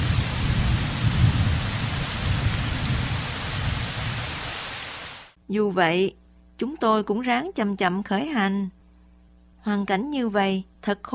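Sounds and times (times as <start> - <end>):
deep rumbling thunder: 0.0 - 4.6
heavy rain pouring on a sandy beach by the sea: 0.0 - 5.4
speech: 5.5 - 8.8, 9.6 - 11.1.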